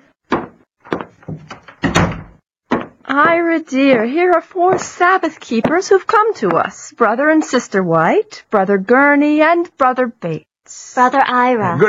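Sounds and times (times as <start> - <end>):
back door heavy wooden thunks and knocks: 0.3 - 3.0
speech: 3.1 - 11.8.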